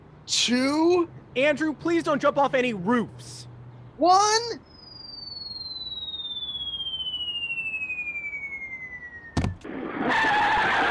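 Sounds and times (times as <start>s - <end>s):
speech: 0.3s - 3.4s, 4.0s - 4.7s
long descending whistle: 4.6s - 10.8s
sudden thump: 9.4s - 9.6s
car tires squealing and skidding: 10.0s - 10.8s.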